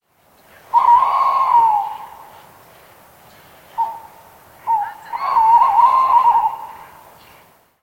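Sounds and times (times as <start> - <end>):
tawny owl: 0.7 - 2.4, 3.8 - 7.0.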